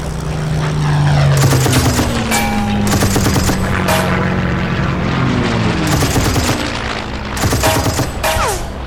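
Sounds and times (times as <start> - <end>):
fighter plane engine roaring in a dive: 0.0 - 8.8
fighter plane machine-gun fire strafing an ammunition train: 1.4 - 4.1, 5.9 - 8.4.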